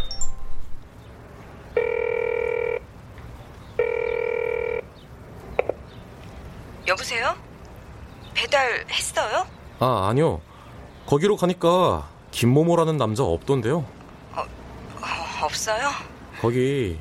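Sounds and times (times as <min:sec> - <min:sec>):
telephone ringback tones on an outgoing call: 0:01.7 - 0:02.9, 0:03.8 - 0:04.9
speech: 0:06.9 - 0:07.5, 0:08.4 - 0:10.5, 0:11.1 - 0:13.9, 0:15.5 - 0:17.0.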